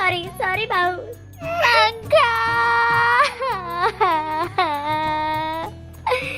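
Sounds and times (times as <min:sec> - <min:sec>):
speech: 0:00.1 - 0:02.7
person crying and sobbing: 0:01.4 - 0:06.3.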